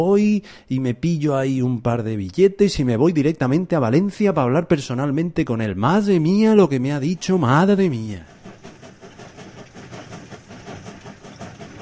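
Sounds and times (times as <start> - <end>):
speech: 0.0 - 8.4
train running on rails: 5.8 - 11.8
faint regular clatter of train wheels: 6.2 - 11.8.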